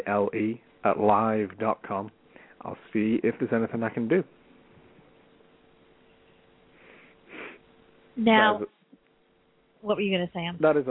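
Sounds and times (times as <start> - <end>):
speech: 0.0 - 4.4, 8.2 - 8.8, 9.8 - 10.9
person sniffling: 6.8 - 7.6.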